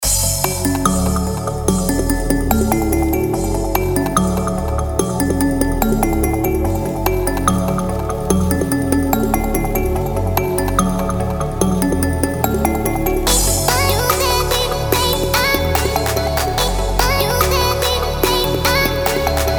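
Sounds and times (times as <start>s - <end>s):
chill melodic trap music: 0.0s - 19.5s.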